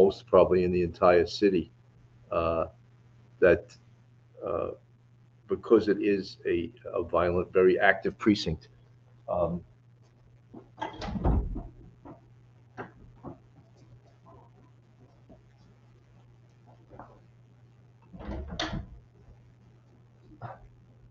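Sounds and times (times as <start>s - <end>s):
steady low hum: 0.0s - 21.0s
speech: 0.1s - 2.8s, 3.4s - 3.8s, 4.4s - 4.8s, 5.5s - 8.7s, 9.3s - 9.7s
hotel room door opening and closing: 10.6s - 12.2s, 18.1s - 19.0s.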